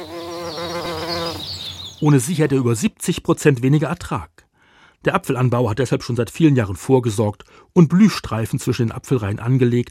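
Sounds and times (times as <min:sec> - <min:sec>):
bees buzzing in an apple orchard: 0:00.0 - 0:02.0
speech: 0:02.0 - 0:04.4, 0:05.0 - 0:09.8.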